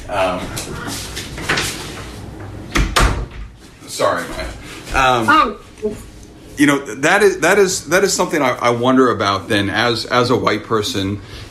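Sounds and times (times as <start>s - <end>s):
door pulled shut with latch and frame thumps: 2.7s - 3.6s
speech: 5.0s - 11.4s.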